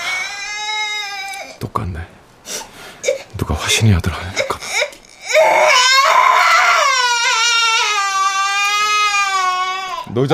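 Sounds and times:
child crying: 0.0 - 1.6, 4.4 - 10.3
speech: 1.6 - 2.6, 3.3 - 4.5, 10.2 - 10.3.

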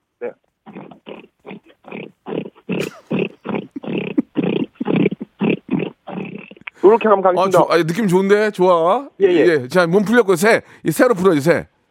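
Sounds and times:
person imitating a pig oinking: 0.6 - 7.1
speech: 6.8 - 11.8.

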